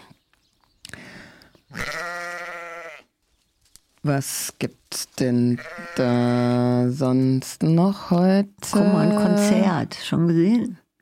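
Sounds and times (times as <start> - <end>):
quiet outdoor background: 0.0 - 11.0
sheep bleating: 1.7 - 3.1, 5.5 - 6.7
speech: 4.0 - 10.8.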